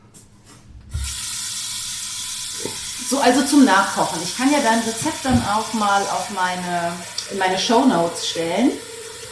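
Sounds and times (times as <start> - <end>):
water running from a tap: 0.9 - 9.3
speech: 3.1 - 8.9
low thump: 5.0 - 5.8.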